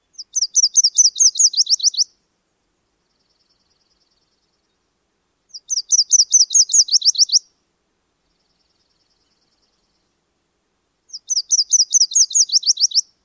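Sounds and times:
myrtle warbler song: 0.0 - 2.2, 2.8 - 4.9, 5.5 - 7.5, 8.2 - 10.2, 11.1 - 13.2.

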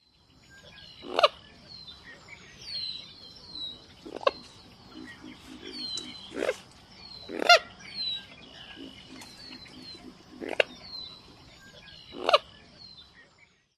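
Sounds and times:
Common Moorhen grating calls: 1.0 - 1.4, 4.0 - 11.4, 12.0 - 12.5.

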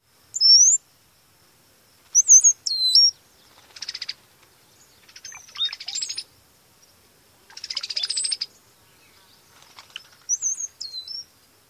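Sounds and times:
Brown-headed Cowbird whistles: 0.4 - 0.8, 2.2 - 3.2, 5.2 - 6.3, 7.6 - 8.5, 10.3 - 11.3
Brown-headed Cowbird chatter: 2.1 - 6.3, 7.4 - 11.3
Brown-headed Cowbird flight: 3.4 - 4.5, 9.5 - 10.4.

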